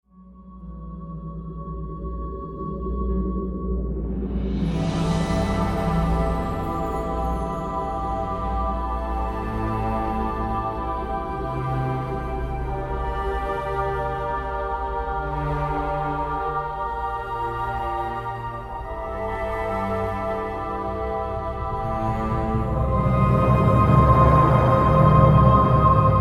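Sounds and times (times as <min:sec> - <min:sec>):
mystical ambient music: 0:00.0 - 0:26.2.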